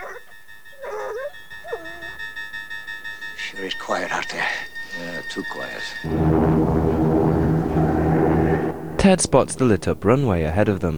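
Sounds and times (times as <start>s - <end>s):
dog whining between two firemen on a fire engine: 0.0s - 2.6s
speech: 3.5s - 6.9s, 9.0s - 10.9s
steady hum: 5.9s - 10.9s.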